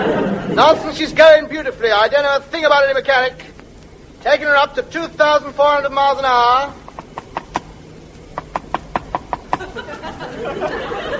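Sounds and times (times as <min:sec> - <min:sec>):
laughter: 0:00.0 - 0:01.2, 0:09.4 - 0:11.1
low continuous hum: 0:00.0 - 0:11.1
speech: 0:00.1 - 0:03.5, 0:04.2 - 0:06.8, 0:09.8 - 0:11.1
knocking on an airplane windscreen: 0:06.9 - 0:07.7, 0:08.4 - 0:09.7.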